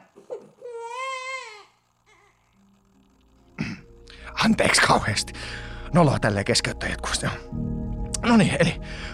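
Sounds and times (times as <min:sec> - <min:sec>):
baby crying: 0:00.6 - 0:02.4
speech: 0:04.4 - 0:09.1.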